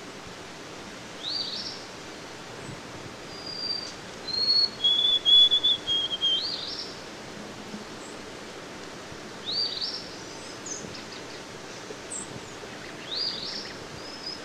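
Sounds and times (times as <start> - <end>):
White-throated sparrow song of pure whistles: 3.3 - 6.9, 9.5 - 10.0, 12.8 - 14.4.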